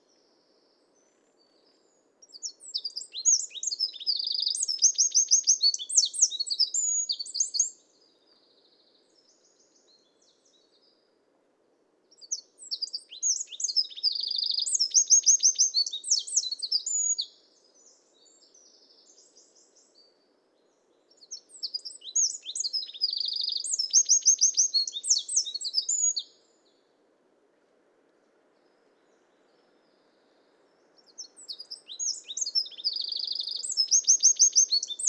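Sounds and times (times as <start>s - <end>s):
wren singing: 2.2s - 7.8s, 12.1s - 17.3s, 21.2s - 26.3s, 31.1s - 35.0s.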